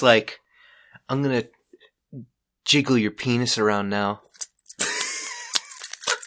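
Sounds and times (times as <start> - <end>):
speech: 0.0 - 0.4, 1.1 - 4.3
keys jingling: 4.3 - 6.2.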